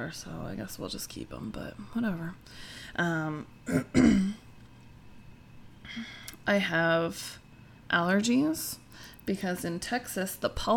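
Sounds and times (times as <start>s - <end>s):
speech: 0.0s - 4.4s, 5.9s - 10.7s
person clearing throat: 3.6s - 4.4s.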